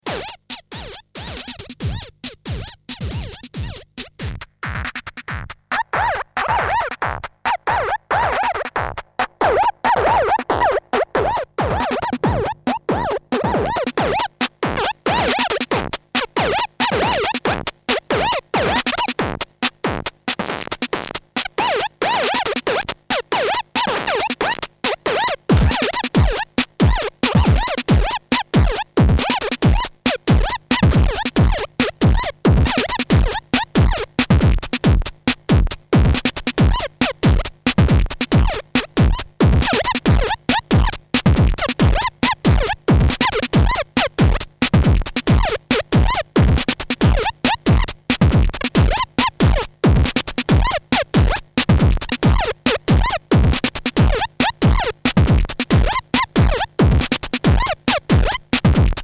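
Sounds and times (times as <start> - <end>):
squeaky synthesized drums: 0.0 - 59.0.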